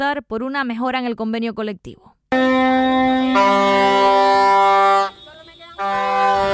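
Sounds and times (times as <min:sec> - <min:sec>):
speech: 0:00.0 - 0:04.6
ambulance sirens at a pay protest: 0:02.3 - 0:06.5
busy outdoor din: 0:02.3 - 0:06.5.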